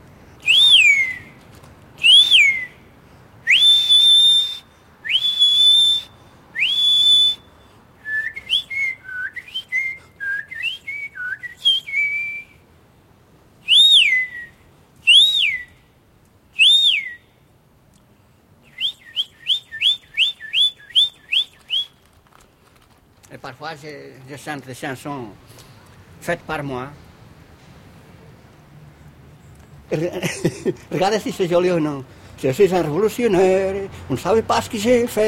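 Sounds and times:
person whistling bird imitations: 0.4s - 1.3s, 2.0s - 2.7s, 3.5s - 7.4s, 8.0s - 12.5s, 13.7s - 14.5s, 15.1s - 15.8s, 16.6s - 17.2s, 18.7s - 22.0s
speech: 23.4s - 27.0s, 29.9s - 35.2s
laughter: 29.9s - 31.5s.

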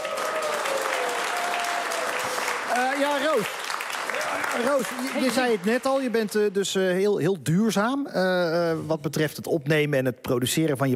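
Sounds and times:
studio audience applause for a musical accompanist: 0.0s - 6.8s
speech: 2.8s - 10.9s.

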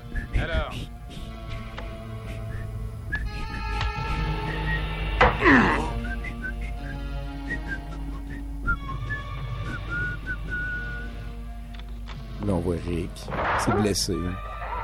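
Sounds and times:
man whistling a game-show theme tune: 0.0s - 0.9s, 2.3s - 5.0s, 5.9s - 11.1s
soft tonal backing: 0.0s - 14.8s
speech: 12.8s - 14.5s.

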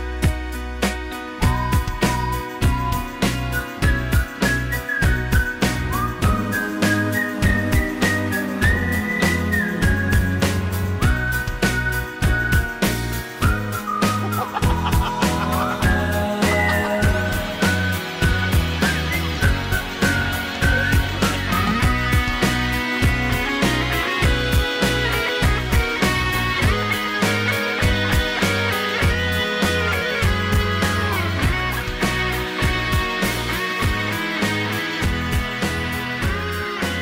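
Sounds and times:
busy backing music with a steady beat: 0.0s - 37.0s
person whistling a wavering melody: 1.4s - 31.8s
laughter: 13.9s - 19.4s.

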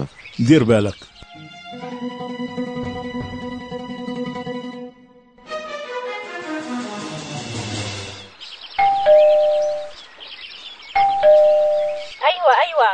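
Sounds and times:
speech: 0.0s - 1.1s
music: 1.1s - 9.2s
two-tone doorbell chime: 8.8s - 9.9s, 11.0s - 12.1s.

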